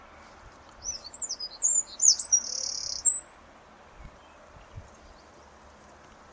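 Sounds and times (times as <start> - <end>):
steady background hiss: 0.0 - 6.3
high sharp bird chirps: 0.8 - 3.3.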